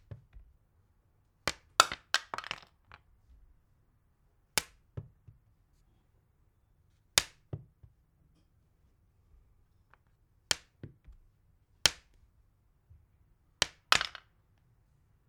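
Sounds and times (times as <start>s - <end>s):
stone hitting glass: 1.5s - 2.7s, 13.6s - 14.2s.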